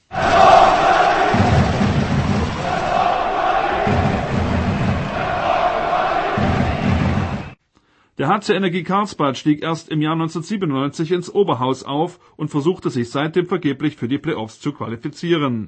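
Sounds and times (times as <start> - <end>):
ice hockey fans cheering and chanting in arena: 0.0 - 7.6
speech: 8.3 - 15.6.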